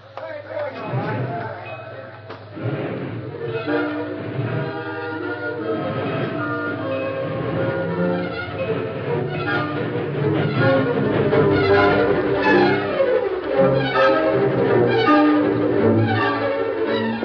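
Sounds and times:
voices: 0.0 - 14.1
train pulling away chugging and rumbling: 0.8 - 17.2
train whistle: 2.6 - 17.2.

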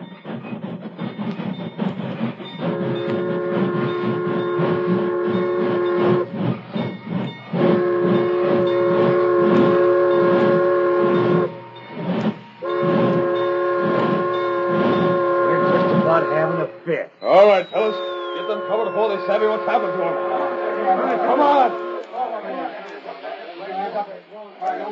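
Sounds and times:
train rumbling: 0.0 - 24.9
train whistle blasts: 2.5 - 6.5, 7.5 - 22.2.

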